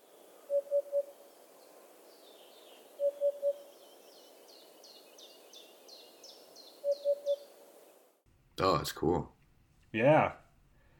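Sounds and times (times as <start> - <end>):
hoopoe giving soft hollow three-note call: 0.0 - 1.8, 2.6 - 3.7, 6.8 - 7.5
birds chirping and twittering: 0.0 - 8.0
speech: 8.6 - 10.4.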